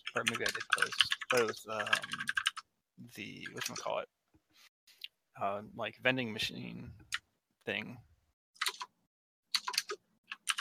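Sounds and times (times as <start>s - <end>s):
computer keyboard typing: 0.0s - 2.6s, 3.4s - 3.9s, 8.6s - 8.9s, 9.5s - 10.5s
speech: 0.2s - 2.4s, 3.0s - 4.2s, 5.4s - 8.1s.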